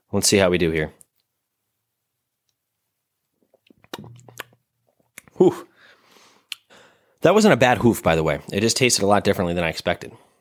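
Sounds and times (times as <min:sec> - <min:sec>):
speech: 0:00.1 - 0:01.0, 0:05.4 - 0:05.7, 0:07.2 - 0:10.3
person slurping a sip of a drink: 0:03.4 - 0:04.6
soft lip clicks: 0:03.4 - 0:05.4, 0:06.5 - 0:06.7.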